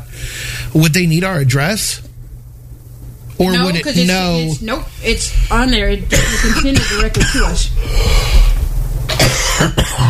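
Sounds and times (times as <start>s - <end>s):
speech: 0.7s - 2.1s, 3.4s - 8.4s, 9.2s - 10.0s
low hum: 1.9s - 10.0s
person coughing: 6.1s - 7.6s, 9.1s - 10.0s.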